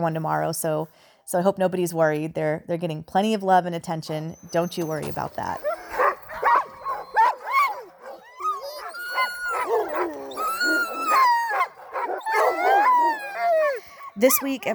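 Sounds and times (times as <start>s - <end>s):
speech: 0.0s - 6.0s, 14.2s - 14.7s
sled dogs whimpering and yipping: 4.1s - 14.7s.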